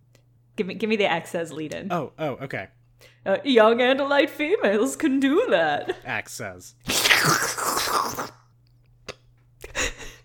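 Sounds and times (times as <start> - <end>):
speech: 0.6 - 8.4
voice imitating slurping up licorice: 6.8 - 8.4.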